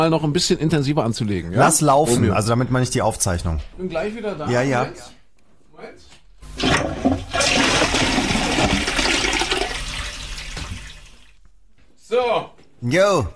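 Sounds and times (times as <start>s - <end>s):
speech: 0.0s - 5.2s, 5.8s - 7.7s, 12.1s - 13.3s
toilet flushing: 6.5s - 11.4s.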